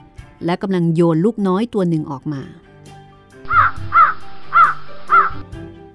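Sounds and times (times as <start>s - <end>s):
speech: 0.4s - 2.6s
crows cawing beside their nest in a forest: 3.5s - 5.4s.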